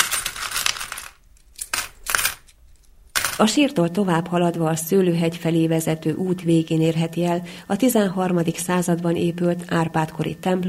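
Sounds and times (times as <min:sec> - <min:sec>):
coins clinking and dropping: 0:00.0 - 0:03.5
speech: 0:03.4 - 0:10.6.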